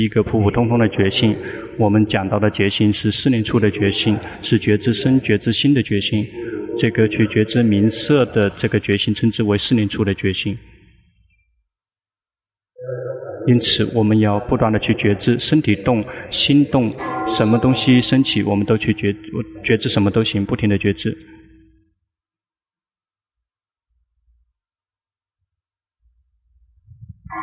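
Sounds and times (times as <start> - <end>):
speech: 0.0 - 10.8, 13.5 - 21.4
bell struck during a meditation pause: 16.5 - 20.1
soft low thumps: 26.8 - 27.3.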